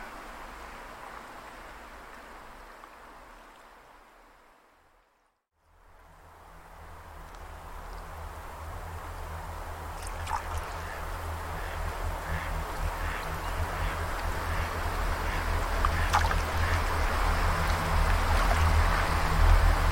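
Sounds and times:
outdoor water noise: 0:00.0 - 0:19.9
outdoor wind: 0:00.0 - 0:19.9
low constant hum: 0:05.6 - 0:19.9.

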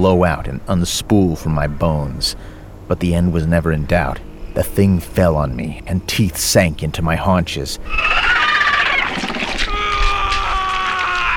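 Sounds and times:
speech: 0:00.0 - 0:08.4
person screaming in pain in a forest: 0:09.6 - 0:11.3.

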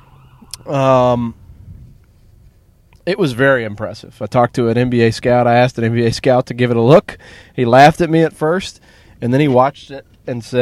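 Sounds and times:
emergency siren wail from a passing ambulance or fire truck: 0:00.0 - 0:01.6
low rumble: 0:00.0 - 0:10.6
speech: 0:00.4 - 0:01.4, 0:03.1 - 0:10.6.

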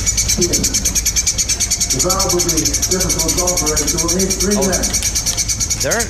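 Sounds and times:
birds chirping inside a brick chimney: 0:00.0 - 0:06.0
voices: 0:00.3 - 0:05.0
speech: 0:00.4 - 0:01.2, 0:01.9 - 0:06.0.

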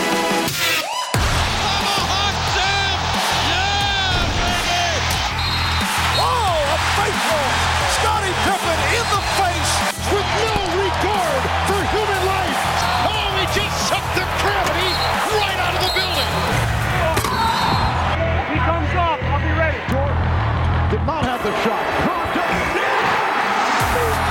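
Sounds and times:
packed basketball arena crowd cheering and whooping: 0:00.1 - 0:24.2.

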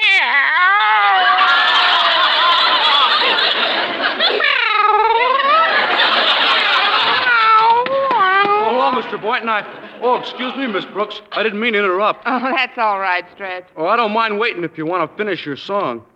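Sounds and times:
man imitating cat meows: 0:00.0 - 0:01.7, 0:04.5 - 0:05.7, 0:07.3 - 0:08.9
laughter: 0:00.9 - 0:12.7
speech: 0:09.1 - 0:16.1.

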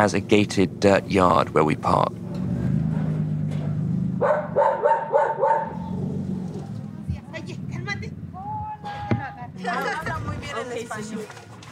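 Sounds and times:
speech: 0:00.0 - 0:02.2
voices chattering greeting arrivals at a house: 0:00.0 - 0:03.8, 0:06.4 - 0:11.7
dogs barking and yipping excitedly: 0:04.2 - 0:06.6.

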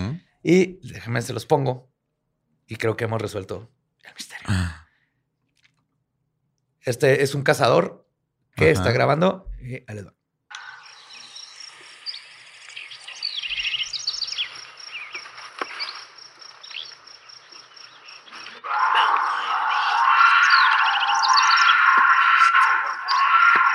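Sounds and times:
speech: 0:00.4 - 0:01.9, 0:02.7 - 0:04.8, 0:06.8 - 0:08.0, 0:08.6 - 0:10.2
crickets chirping at night: 0:10.6 - 0:23.7
bobcat screaming: 0:18.3 - 0:23.7.

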